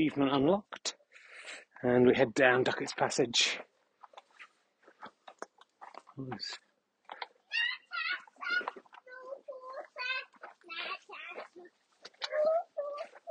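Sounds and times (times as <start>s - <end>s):
speech: 0.0s - 3.7s, 6.2s - 6.6s
small child babbling and squealing: 7.5s - 13.2s.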